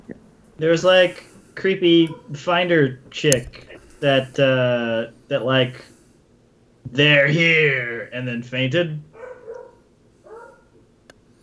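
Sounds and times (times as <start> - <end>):
speech: 0.6 - 5.9, 6.8 - 9.1
dog barks: 2.1 - 2.4, 9.1 - 10.8.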